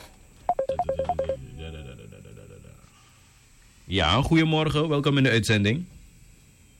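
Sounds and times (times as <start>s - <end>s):
steady hum of an open phone line: 0.4s - 1.7s
short electronic beeps of telephone call pickup: 0.5s - 1.4s
speech: 3.9s - 5.9s.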